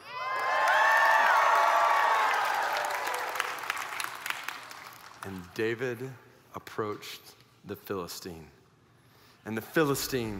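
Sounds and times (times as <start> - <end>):
large crowd of soldiers roaring and cheering: 0.0 - 5.0
people clapping: 0.0 - 5.8
speech: 5.2 - 8.6, 9.4 - 10.3.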